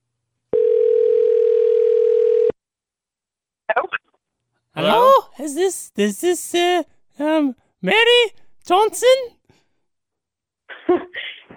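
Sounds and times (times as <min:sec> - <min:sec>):
telephone dial tone while a call is placed: 0:00.6 - 0:02.6
speech: 0:04.8 - 0:09.4.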